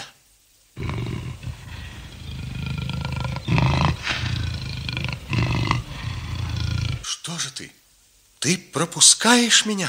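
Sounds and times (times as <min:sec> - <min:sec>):
lion roaring: 0:00.8 - 0:07.1
speech: 0:08.5 - 0:09.8.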